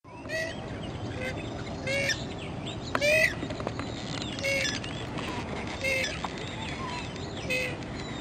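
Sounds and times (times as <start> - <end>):
Purple Swamphen calls: 0.1 - 2.4, 3.0 - 8.1.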